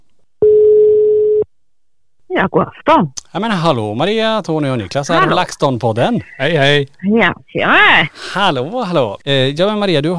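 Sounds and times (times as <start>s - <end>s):
electronic telephone ringing tone while placing a call: 0.4s - 1.4s
speech: 2.4s - 10.1s.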